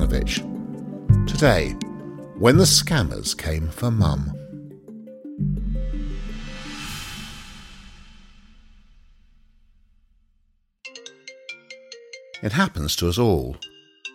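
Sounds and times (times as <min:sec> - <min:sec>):
speech: 0:00.1 - 0:00.5, 0:01.4 - 0:04.4, 0:12.4 - 0:13.7
deep musical swell with booming bass: 0:05.4 - 0:08.6.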